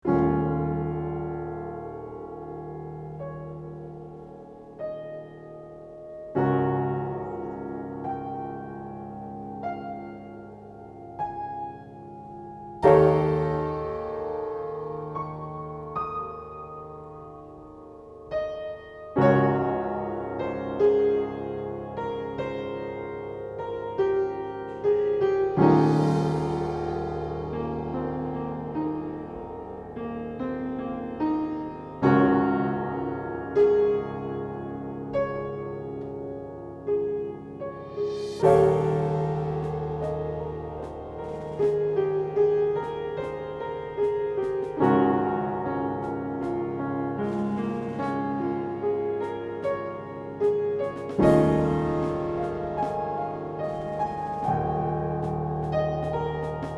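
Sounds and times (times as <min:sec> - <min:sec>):
piano playing: 0:00.0 - 0:56.7.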